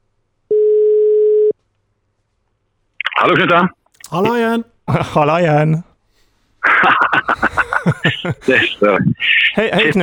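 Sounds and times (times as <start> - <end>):
telephone ringback tone: 0.5 - 1.5
speech: 3.2 - 5.9, 7.8 - 10.0
laughter: 6.6 - 10.0.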